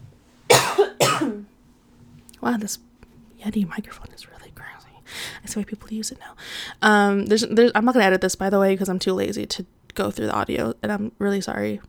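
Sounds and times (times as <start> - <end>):
person coughing harshly: 0.5 - 1.5
speech: 2.4 - 4.8, 5.4 - 11.8.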